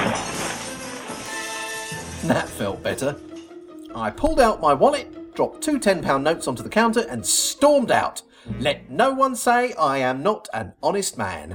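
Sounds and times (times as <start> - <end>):
glass panel kicked in and smashed: 0.0 - 2.3
speech: 2.2 - 3.3, 3.9 - 11.5.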